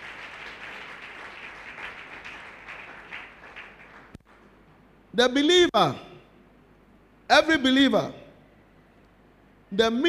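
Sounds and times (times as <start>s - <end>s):
church audience clapping: 0.0s - 4.6s
speech: 5.2s - 6.1s, 7.3s - 8.2s, 9.7s - 10.0s.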